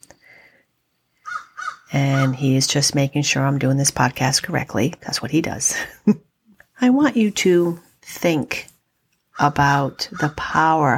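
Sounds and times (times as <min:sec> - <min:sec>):
crow cawing: 0:01.2 - 0:02.3
speech: 0:01.9 - 0:08.7, 0:09.4 - 0:10.9.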